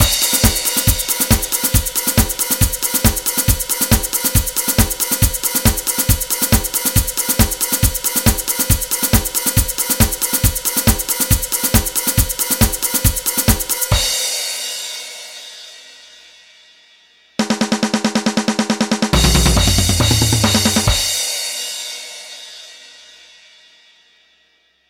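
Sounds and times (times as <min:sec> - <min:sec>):
electronic drum: 0:00.0 - 0:14.4, 0:17.4 - 0:21.4.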